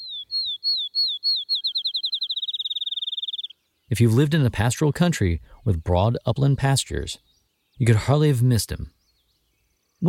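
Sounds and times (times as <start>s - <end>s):
field sparrow singing: 0.0s - 4.0s, 7.2s - 7.8s, 8.9s - 10.0s
speech: 3.9s - 9.0s.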